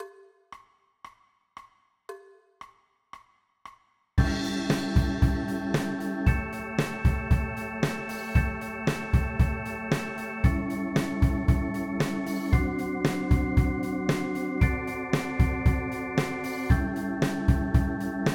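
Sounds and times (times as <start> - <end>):
blues rock backing track: 4.2 - 18.3.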